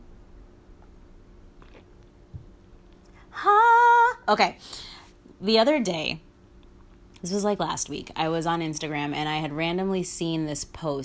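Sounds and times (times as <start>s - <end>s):
person sipping water: 1.5s - 2.1s
small gulp: 1.6s - 1.9s
soft slurp: 1.6s - 2.0s
speech: 4.3s - 6.3s, 7.2s - 11.0s.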